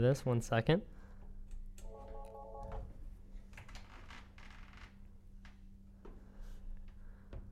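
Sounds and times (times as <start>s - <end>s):
speech: 0.0s - 1.0s
low electrical hum: 0.0s - 7.5s
electronic telephone tone: 1.9s - 2.8s.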